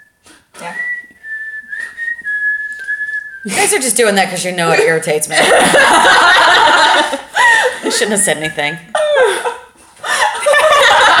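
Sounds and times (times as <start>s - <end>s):
man whistling an eerie melody while walking: 0.0s - 3.5s
faint noise: 0.0s - 11.1s
speech: 3.4s - 7.3s, 7.9s - 9.4s
laughter: 5.4s - 11.1s.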